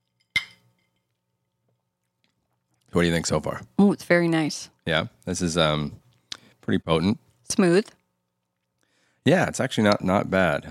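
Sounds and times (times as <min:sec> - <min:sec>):
cocktail glasses of Manhattan cocktails clinking in a toast: 0:00.0 - 0:01.0
speech: 0:02.9 - 0:06.0, 0:06.6 - 0:08.0, 0:09.2 - 0:10.7.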